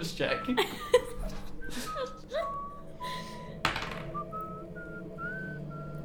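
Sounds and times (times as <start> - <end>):
speech: 0.0 - 1.0
laughter: 0.6 - 2.6
person whistling a short wandering melody: 1.6 - 6.0.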